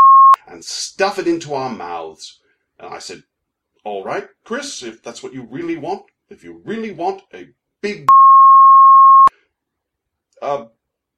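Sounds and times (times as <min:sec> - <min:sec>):
censor bleep tone over speech: 0:00.0 - 0:00.4, 0:08.1 - 0:09.3
speech: 0:00.6 - 0:08.2, 0:10.4 - 0:10.8.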